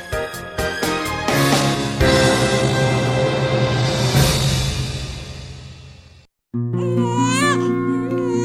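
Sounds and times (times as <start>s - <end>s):
music: 0.0s - 8.4s
newborn baby crying: 6.8s - 8.4s.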